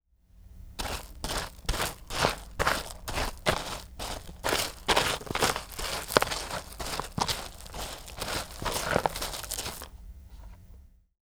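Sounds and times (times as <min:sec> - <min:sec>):
box of gravel: 0:00.8 - 0:10.6.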